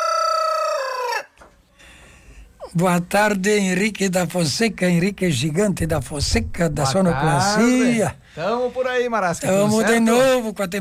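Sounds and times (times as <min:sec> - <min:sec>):
rooster crowing: 0:00.0 - 0:01.4
speech: 0:02.7 - 0:10.8.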